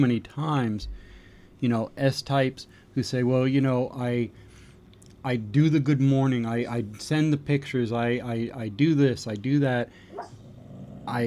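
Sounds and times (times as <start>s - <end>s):
speech: 0.0s - 4.4s, 5.2s - 10.4s, 11.1s - 11.2s
low steady hum: 0.0s - 11.2s
sleeping dog barking softly while dreaming: 10.1s - 10.4s.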